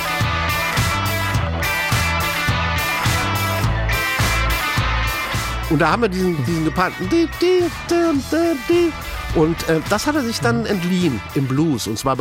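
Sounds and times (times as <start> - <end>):
driving rock riff on distorted electric guitar: 0.0 - 11.6
steady rock drums: 0.0 - 11.6
speech: 5.7 - 12.1.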